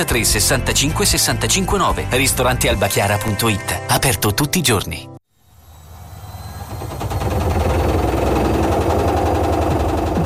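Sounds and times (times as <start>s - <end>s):
speech: 0.0s - 5.1s
old washing machine rattling and shaking: 6.6s - 10.2s.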